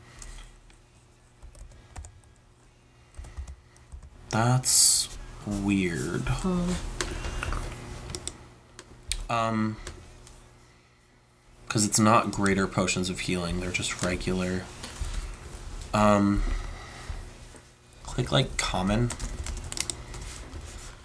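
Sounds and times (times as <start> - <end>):
typing on a computer keyboard: 1.4 - 2.4, 3.2 - 4.1, 19.0 - 20.3
speech: 4.3 - 7.4, 9.3 - 10.0, 11.7 - 14.8, 15.9 - 16.6, 18.2 - 19.3.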